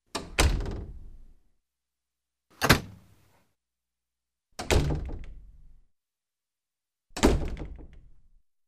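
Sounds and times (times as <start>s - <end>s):
wooden door closing: 0.1s - 1.0s, 2.5s - 3.2s, 4.6s - 5.5s, 7.1s - 8.2s.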